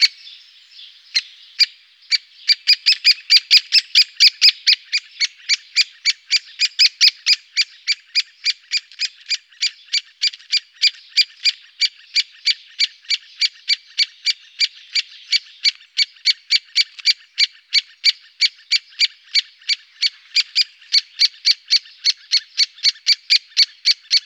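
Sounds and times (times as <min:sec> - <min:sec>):
great spotted woodpecker calling: 0:00.0 - 0:24.2.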